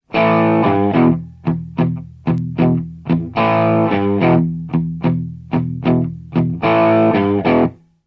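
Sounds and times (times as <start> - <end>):
heavy blues music: 0.1 - 7.8.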